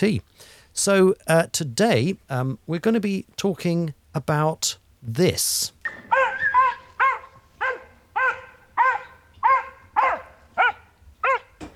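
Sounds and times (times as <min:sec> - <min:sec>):
speech: 0:00.0 - 0:06.0
male Wheaten Scottish Terrier barking at a dog across the road: 0:06.1 - 0:11.6.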